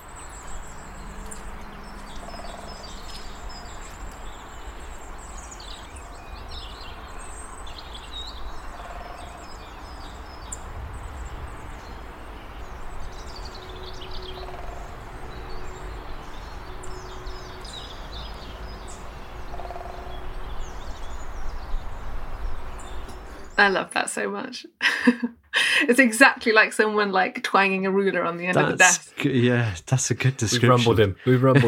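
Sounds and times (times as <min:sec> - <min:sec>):
woodpecker drumming on wood in local woods: 0:00.0 - 0:04.3
birds including robins singing and chirping: 0:00.0 - 0:24.2
speech: 0:23.6 - 0:31.6
laughter: 0:28.6 - 0:31.6.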